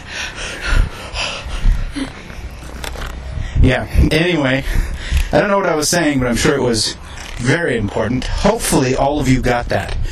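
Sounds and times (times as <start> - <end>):
heavy ragged gasping breaths while walking: 0.0 - 2.5, 3.3 - 5.5
speech: 3.6 - 10.0.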